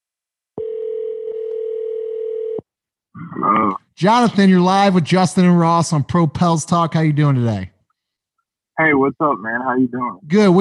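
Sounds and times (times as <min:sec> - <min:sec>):
telephone line tone as a call is placed: 0:00.6 - 0:02.6
speech: 0:03.4 - 0:07.7, 0:08.8 - 0:10.5.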